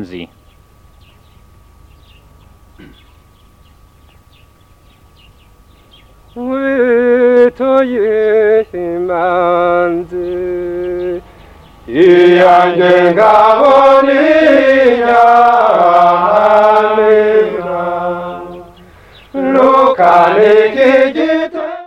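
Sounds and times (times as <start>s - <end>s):
Tutsi praise song singing in Burundi: 6.3s - 11.3s, 11.9s - 21.8s.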